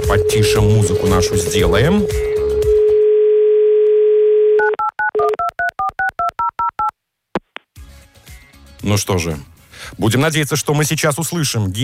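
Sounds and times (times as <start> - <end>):
speech: 0.1 - 2.3, 8.8 - 11.8
telephone dial tone: 2.9 - 6.9
short keypad beeps at alternating pitches: 4.6 - 6.9.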